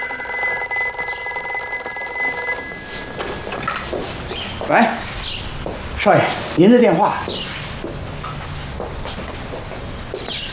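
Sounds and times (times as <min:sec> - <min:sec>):
electronic telephone ring: 0:00.0 - 0:04.6
people talking: 0:06.0 - 0:07.4.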